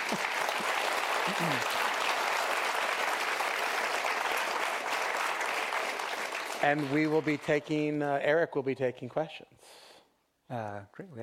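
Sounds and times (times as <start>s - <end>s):
audience applauding at the end of a talk: 0.0s - 7.8s
speech: 1.3s - 1.8s, 6.6s - 9.8s, 10.5s - 11.2s.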